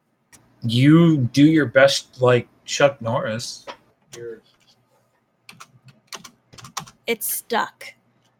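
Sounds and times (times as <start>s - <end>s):
speech: 0.6s - 4.6s, 7.1s - 8.0s
typing on a computer keyboard: 5.5s - 7.0s.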